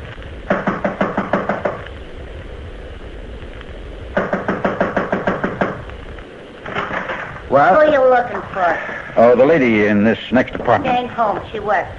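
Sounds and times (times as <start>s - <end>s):
steady hiss: 0.0s - 11.9s
rapid firm knocking on a second-floor apartment door: 0.5s - 1.8s, 4.2s - 5.8s
speech: 7.6s - 11.9s.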